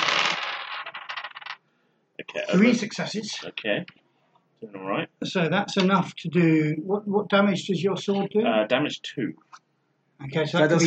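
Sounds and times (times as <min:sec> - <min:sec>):
handful of dice clattering across a hard surface: 0:00.0 - 0:01.6
speech: 0:02.3 - 0:04.0, 0:04.6 - 0:09.6, 0:10.2 - 0:10.8.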